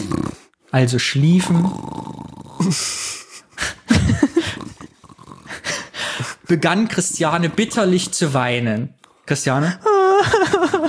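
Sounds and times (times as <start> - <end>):
human voice imitating snoring: 0.0 - 0.6, 1.3 - 3.2, 3.8 - 8.5
speech: 0.7 - 2.0, 2.6 - 3.2, 6.5 - 10.8
laughter: 3.9 - 4.9, 9.9 - 10.8.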